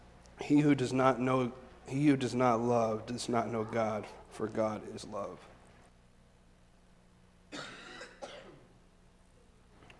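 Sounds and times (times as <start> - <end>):
speech: 0.5 - 5.5
harsh coughs: 7.5 - 8.7.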